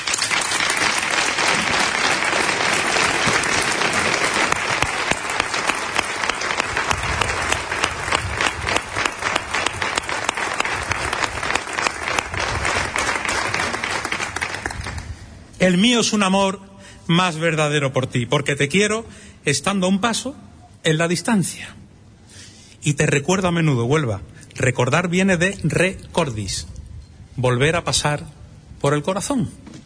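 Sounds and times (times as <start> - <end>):
large audience applause: 0.0 - 15.1
speech: 15.7 - 21.8, 22.8 - 26.7, 27.4 - 29.8.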